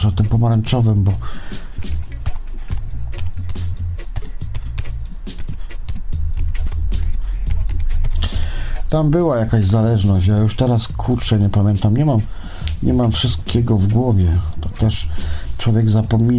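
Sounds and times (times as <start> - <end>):
speech: 0.0 - 1.6, 8.9 - 16.3
typing on a wireless computer keyboard: 1.8 - 8.4.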